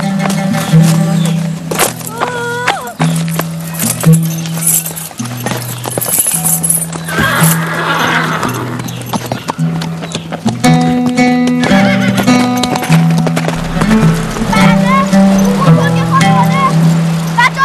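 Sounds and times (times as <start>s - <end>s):
horse hooves clip-clopping: 0.0s - 17.5s
horse neighing and whinnying: 7.1s - 8.8s.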